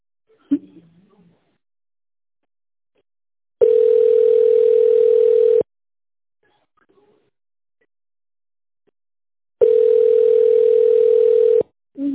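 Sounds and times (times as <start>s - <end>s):
telephone dial tone: 3.6s - 5.6s, 9.6s - 11.6s.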